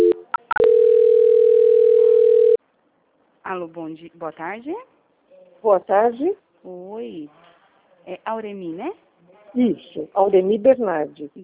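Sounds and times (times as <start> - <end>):
telephone line beeps during a call transfer: 0.0 - 2.6
speech: 3.5 - 4.9, 5.6 - 7.4, 8.0 - 11.4.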